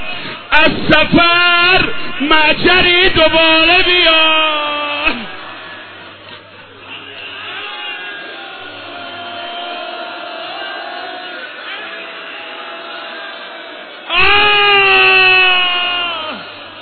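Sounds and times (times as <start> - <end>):
speech: 0.6 - 4.6
many people wailing and sobbing: 5.1 - 16.8.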